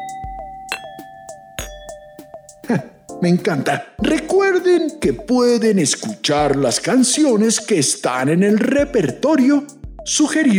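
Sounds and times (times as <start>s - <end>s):
small metal tube striking glass bottles partly filled with water: 0.0s - 3.0s
speech: 2.7s - 10.5s.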